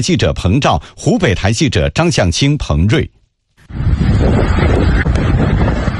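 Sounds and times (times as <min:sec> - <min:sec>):
speech: 0:00.0 - 0:05.1
strong thunderstorm wind roaring and buffeting the microphone: 0:03.6 - 0:05.9.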